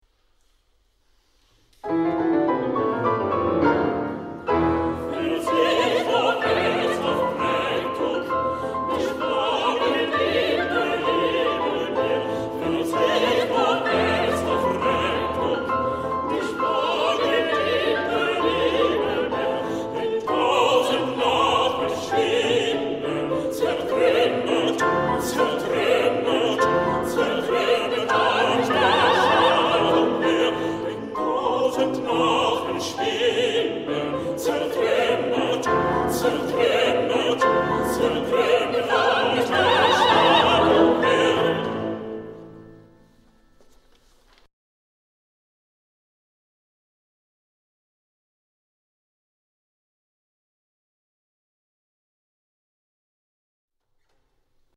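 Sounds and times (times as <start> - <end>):
chorus singing: 2.5 - 43.0.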